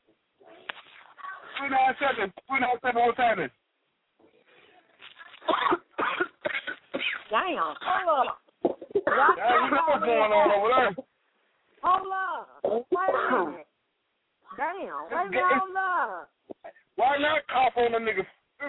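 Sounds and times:
speech: 1.6s - 3.6s, 7.3s - 8.4s, 9.1s - 11.1s, 11.8s - 13.6s, 14.6s - 16.3s, 17.0s - 18.6s
harsh coughing through a telephone line: 5.4s - 9.6s.

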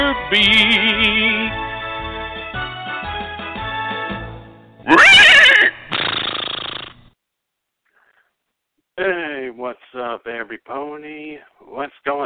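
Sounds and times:
tuneful music: 0.0s - 4.9s
speech: 0.3s - 1.6s, 11.4s - 12.2s
horse neighing: 4.9s - 5.9s.

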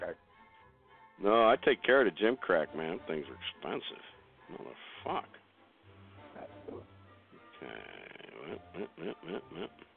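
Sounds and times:
speech: 1.2s - 5.4s, 7.6s - 9.9s
long drawn-out burp into the microphone: 7.4s - 9.9s.

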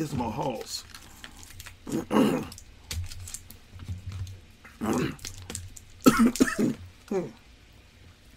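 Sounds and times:
speech: 0.0s - 0.9s, 1.8s - 2.6s, 4.8s - 5.3s, 6.2s - 7.4s
choking person coughing: 1.9s - 2.5s, 6.0s - 7.3s
choking person clearing throat: 1.9s - 2.6s, 4.8s - 5.2s, 6.0s - 7.4s.

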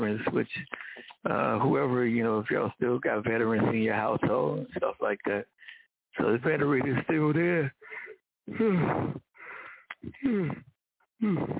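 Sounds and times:
speech: 0.0s - 7.8s, 8.5s - 9.3s, 10.0s - 11.5s
breathy inhale: 0.7s - 1.2s, 5.6s - 5.9s, 7.8s - 10.6s
person yawning: 8.5s - 9.2s, 10.0s - 10.6s, 11.2s - 11.5s.

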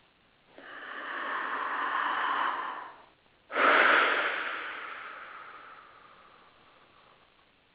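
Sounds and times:
slow deep breath in and out: 0.5s - 7.4s.

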